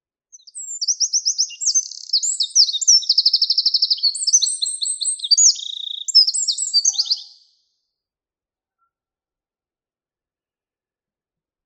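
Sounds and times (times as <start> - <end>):
Eurasian wren song with twittering and rattling trills: 0.3 - 7.7.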